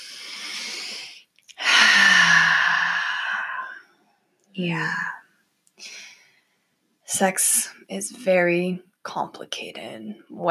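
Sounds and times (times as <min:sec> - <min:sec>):
deep breathing during a guided group relaxation: 0:00.0 - 0:03.9
speech: 0:04.6 - 0:05.2, 0:07.1 - 0:10.4.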